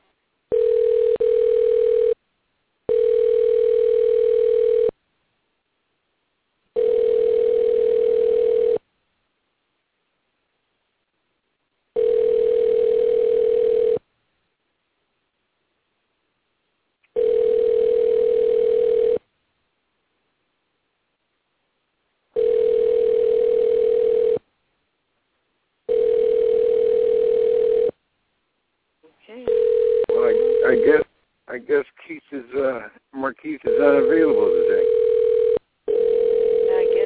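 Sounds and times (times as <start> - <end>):
dial tones of a phone call placed from a studio: 0.5 - 2.2, 2.9 - 4.9, 6.8 - 8.8, 12.0 - 14.0, 17.1 - 19.2, 22.4 - 24.4, 25.9 - 27.9, 29.5 - 31.0, 33.7 - 37.0.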